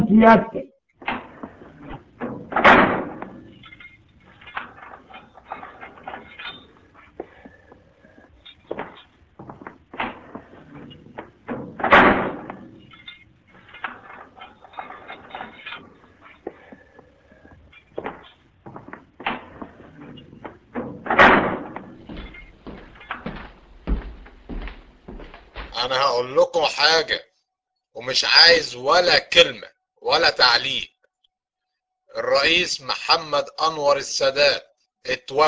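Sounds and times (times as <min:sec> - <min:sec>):
speech: 0:00.1 - 0:00.6, 0:26.2 - 0:27.2, 0:28.1 - 0:30.9, 0:32.2 - 0:35.4
heavy metal prison cell doors clanging open: 0:01.1 - 0:26.0
shuffling footsteps: 0:03.2 - 0:26.0.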